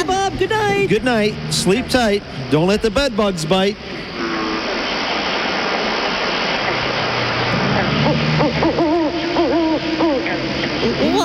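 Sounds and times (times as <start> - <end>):
steady hiss: 0.0 - 11.2
speech: 0.8 - 4.1
owl hooting: 7.8 - 11.0.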